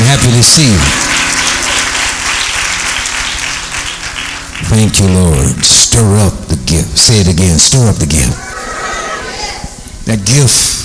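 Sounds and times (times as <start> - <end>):
church audience clapping hands: 0.0 - 6.3
low hum of music: 0.0 - 8.3
speech: 0.4 - 1.4, 4.7 - 8.6, 10.1 - 10.8.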